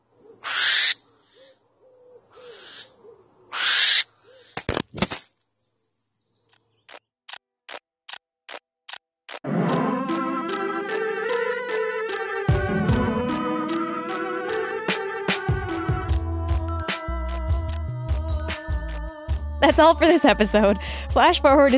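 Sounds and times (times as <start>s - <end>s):
angry barn owls hissing and screeching: 0.4s - 4.6s
music: 9.5s - 21.7s
speech: 19.7s - 21.7s.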